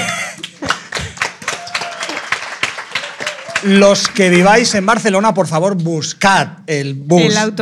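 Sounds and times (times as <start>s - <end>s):
audience clapping: 0.0s - 6.1s
speech: 3.6s - 7.6s.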